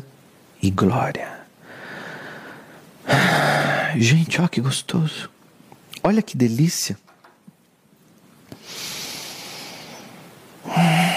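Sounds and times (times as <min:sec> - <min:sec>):
speech: 0:00.6 - 0:01.4, 0:03.3 - 0:05.4, 0:06.0 - 0:07.0
person breathing deeply with a hand on their chest: 0:01.6 - 0:04.0, 0:08.6 - 0:11.1.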